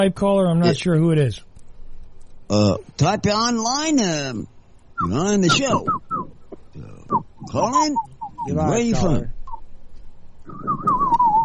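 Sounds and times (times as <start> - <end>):
speech: 0.0 - 1.5, 2.5 - 9.4
low rumbling hum: 0.0 - 11.4
person whistling a bird call: 5.0 - 6.4, 7.1 - 8.8, 10.5 - 11.4.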